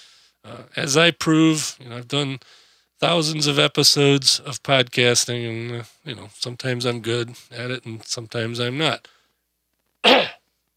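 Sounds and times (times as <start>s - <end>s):
speech: 0.4s - 9.2s, 10.0s - 10.4s
person clearing throat: 10.0s - 10.4s.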